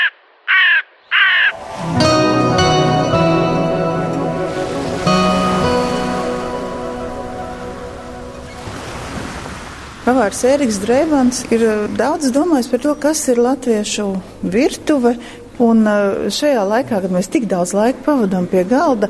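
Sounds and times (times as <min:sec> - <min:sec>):
crow cawing: 0:00.0 - 0:01.6
rushing surf-like noise with ringing tones: 0:01.4 - 0:11.4
speech: 0:10.1 - 0:19.0.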